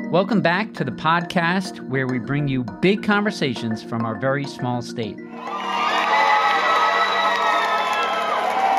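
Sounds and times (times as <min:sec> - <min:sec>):
speech: 0:00.1 - 0:05.9
crowd of supporters cheering and whooping at an election victory: 0:05.3 - 0:08.7
supporters' high shouts and excited voices: 0:05.3 - 0:08.7.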